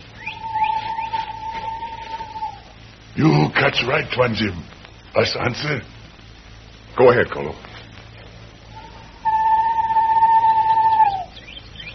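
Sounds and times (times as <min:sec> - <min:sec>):
steady high tone: 0:00.0 - 0:04.0, 0:08.7 - 0:11.5
bird calling in the jungle with whistled chirps: 0:00.1 - 0:02.6, 0:08.8 - 0:11.9
speech: 0:03.2 - 0:05.9, 0:07.0 - 0:07.7.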